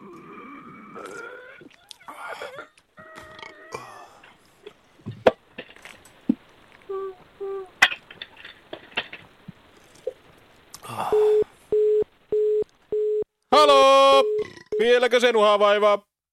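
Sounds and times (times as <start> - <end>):
low-pitched phone line beeps after a dropped call-in call: 11.1 - 13.2, 14.1 - 14.9
speech: 14.9 - 16.1.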